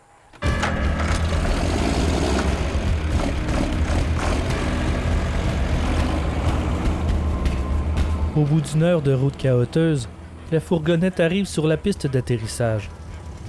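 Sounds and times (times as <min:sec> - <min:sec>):
tractor unit engine pulling a semi-trailer: 0:00.0 - 0:13.4
speech: 0:08.4 - 0:13.0.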